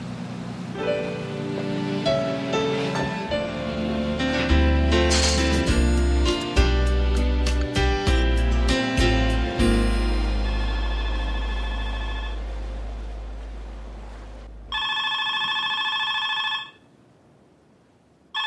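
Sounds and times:
low rumbling noise: 0:00.0 - 0:14.9
telephone ringing with a buzzing trill: 0:10.4 - 0:12.4, 0:14.7 - 0:16.9.

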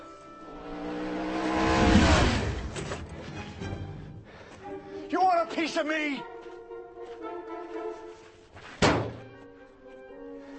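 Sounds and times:
car engine revving hard: 0:00.4 - 0:03.1
speech: 0:05.8 - 0:06.3
sharp clunk: 0:08.8 - 0:09.2.

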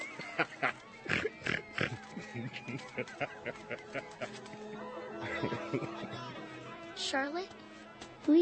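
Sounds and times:
laughter: 0:00.0 - 0:06.8
speech: 0:00.2 - 0:00.8, 0:02.4 - 0:06.4, 0:07.0 - 0:07.6, 0:08.2 - 0:08.4
pig grunting and oinking: 0:01.1 - 0:02.0.

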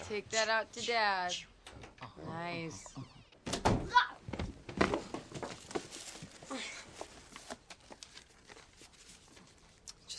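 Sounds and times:
speech: 0:00.1 - 0:03.1
door being pushed shut: 0:03.0 - 0:04.5.

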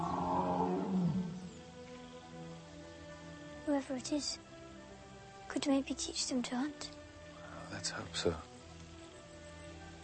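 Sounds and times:
tiger roaring: 0:00.0 - 0:01.5
speech: 0:03.8 - 0:04.5, 0:05.5 - 0:07.0, 0:07.7 - 0:08.5.

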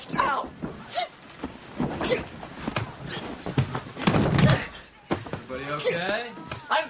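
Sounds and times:
body thudding onto the floor falling out of a bed: 0:00.1 - 0:05.5
dull bumps and knocks: 0:00.1 - 0:06.7.

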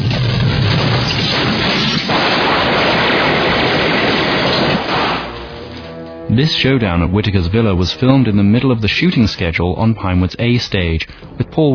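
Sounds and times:
cannon blast from a remote-controlled film prop: 0:00.0 - 0:05.9
speech: 0:06.4 - 0:11.7.

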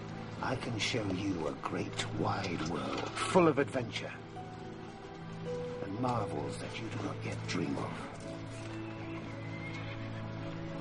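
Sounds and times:
speech: 0:00.4 - 0:04.3, 0:05.4 - 0:08.6
horse neighing: 0:08.8 - 0:10.3.

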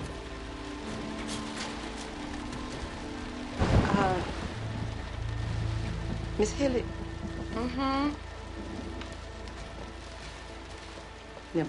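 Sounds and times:
light rain falling: 0:00.0 - 0:11.6
speech: 0:06.4 - 0:07.0, 0:07.6 - 0:08.7.

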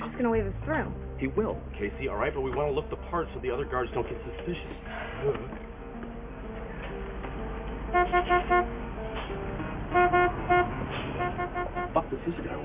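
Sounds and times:
steady rumble of traffic: 0:00.0 - 0:12.6
speech: 0:00.2 - 0:05.8, 0:07.9 - 0:08.8, 0:12.1 - 0:12.6
car horn honking in short loud blasts: 0:07.9 - 0:08.8, 0:09.9 - 0:12.2.

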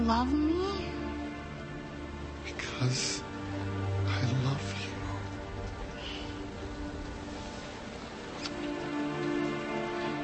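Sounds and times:
steady rain falling: 0:00.0 - 0:10.2
speech: 0:00.1 - 0:00.6, 0:02.5 - 0:03.3.

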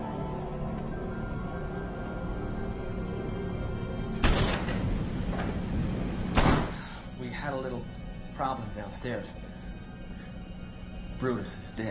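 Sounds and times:
steady low rumble: 0:00.0 - 0:11.7
door being opened with a sharp rattling thud: 0:04.2 - 0:06.8
speech: 0:07.4 - 0:09.5, 0:11.2 - 0:11.8.

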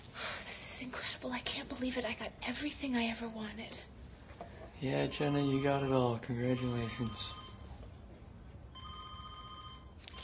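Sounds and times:
low hum: 0:00.0 - 0:10.2
speech: 0:00.8 - 0:04.0, 0:04.8 - 0:07.4
telephone ringing with electronic trill: 0:05.0 - 0:07.8, 0:08.7 - 0:10.2.

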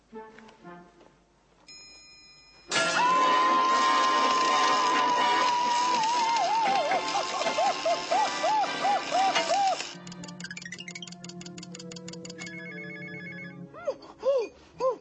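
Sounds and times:
window alarm system bell ringing with electric clatter: 0:01.7 - 0:03.6, 0:09.8 - 0:13.6
laughter: 0:03.0 - 0:10.0.

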